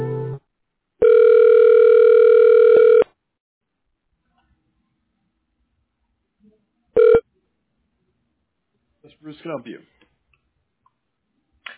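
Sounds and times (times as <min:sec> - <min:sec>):
telephone line tone during a call transfer: 0:01.0 - 0:03.1, 0:07.0 - 0:07.2
speech: 0:09.4 - 0:10.0.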